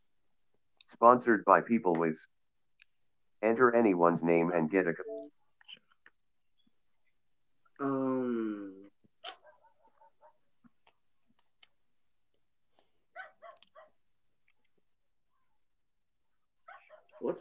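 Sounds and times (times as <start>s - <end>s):
speech: 0.9s - 2.4s, 3.4s - 5.3s, 17.2s - 17.3s
dog barking: 9.4s - 10.5s, 13.1s - 14.0s, 16.6s - 17.3s.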